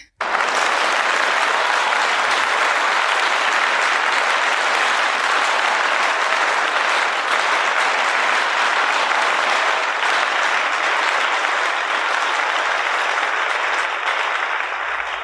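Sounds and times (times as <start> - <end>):
audience applause of many hands clapping: 0.1 - 15.2.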